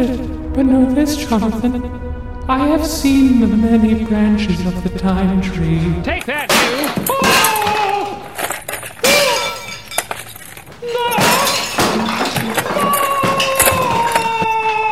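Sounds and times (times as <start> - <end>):
speech: 0.6 - 7.4
breaking glass shattering: 6.2 - 14.9
shelf of household appliances crashing down: 6.3 - 14.9
people shouting: 6.4 - 8.4, 9.0 - 9.7, 10.8 - 14.9.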